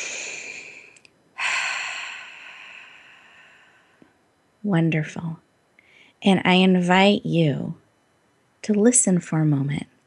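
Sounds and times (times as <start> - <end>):
group breathing in and out during a guided breathing exercise: 0.0 - 4.2
speech: 4.6 - 5.4, 6.2 - 7.8, 8.6 - 9.9.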